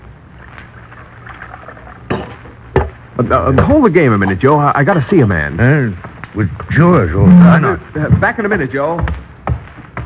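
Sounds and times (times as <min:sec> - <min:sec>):
coffee pouring into a cup: 0:00.7 - 0:02.6
speech: 0:03.2 - 0:09.3.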